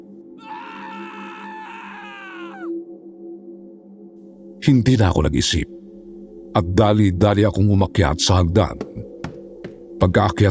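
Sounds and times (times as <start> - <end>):
man screaming: 0.4 - 2.7
speech: 4.7 - 5.8, 6.6 - 9.0, 10.0 - 10.5.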